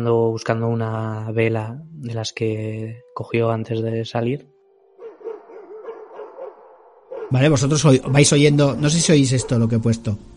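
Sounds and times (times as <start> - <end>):
speech: 0.0 - 4.5, 7.3 - 10.3
several dogs barking: 5.0 - 10.1.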